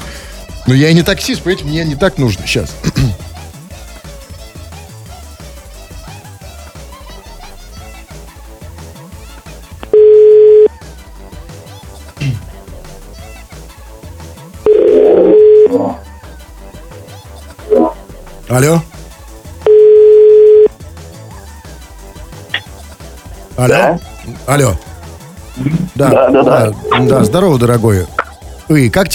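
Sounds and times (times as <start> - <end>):
loud ongoing music: 0.0 - 29.1
speech: 0.7 - 3.2, 18.6 - 18.9, 23.6 - 24.9, 25.6 - 29.1
telephone call tones while calling someone: 9.9 - 10.7, 14.7 - 16.0, 19.7 - 20.8.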